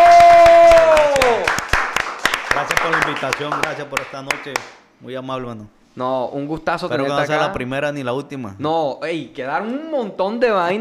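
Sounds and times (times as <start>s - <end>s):
sustained cheer or whoop: 0.0s - 1.6s
audience applause: 0.0s - 4.7s
speech: 3.2s - 10.7s.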